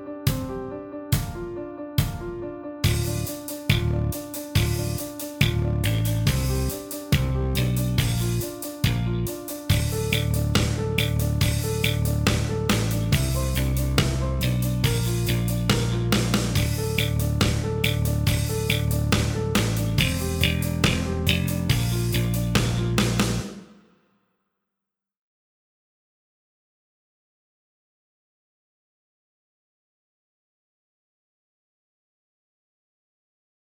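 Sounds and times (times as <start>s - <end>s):
slow D minor backing track: 0.3s - 23.4s.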